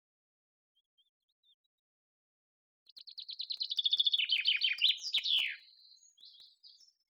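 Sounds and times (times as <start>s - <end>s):
common chaffinch Fringilla coelebs song: 2.9s - 7.0s.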